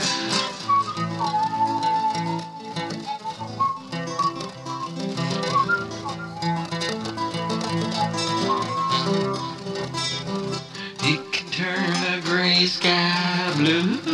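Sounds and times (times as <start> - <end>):
whistled melody: 0.0 - 10.6
full steady musical backing: 0.0 - 14.1.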